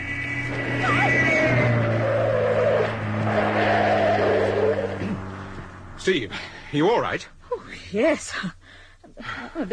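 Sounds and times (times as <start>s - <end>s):
tires squealing as a car brakes hard: 0.0s - 6.1s
powerful sports car engine revving past on a narrow road in Bavaria: 0.0s - 6.7s
speech: 6.1s - 8.6s, 9.2s - 9.7s.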